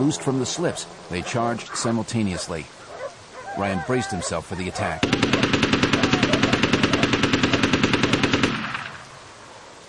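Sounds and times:
speech: 0.0 - 2.8, 3.6 - 5.6
rapid automatic fire from an M16 rifle: 5.0 - 9.0.

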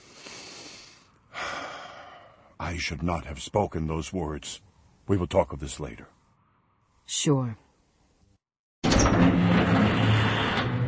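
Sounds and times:
speech: 2.6 - 6.2, 7.1 - 7.6
heavy cell door grinding and creaking as it swings open: 8.8 - 10.8.

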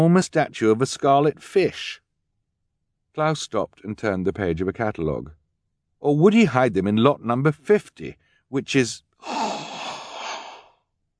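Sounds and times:
speech: 0.0 - 2.0, 3.2 - 5.4, 6.0 - 9.1
sharp gasp, breathy intake of air: 9.2 - 10.8.

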